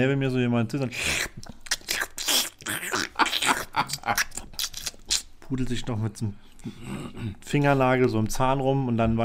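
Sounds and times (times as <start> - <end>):
speech: 0.0 - 1.6, 3.8 - 4.4, 5.5 - 9.2
person imitating loud wet smacking while chewing: 0.9 - 5.4.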